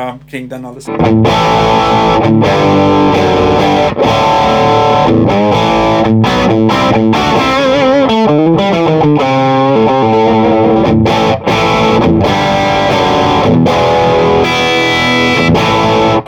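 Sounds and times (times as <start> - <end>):
speech: 0.0 - 7.4
loud fuzzy distorted electric guitar chords strummed: 0.0 - 16.2.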